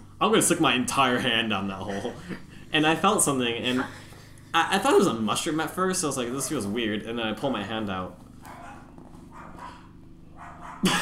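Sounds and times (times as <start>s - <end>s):
low rumbling noise: 0.0s - 11.0s
speech: 0.2s - 8.2s, 10.8s - 11.0s
single loud sharp dog bark: 8.4s - 10.8s.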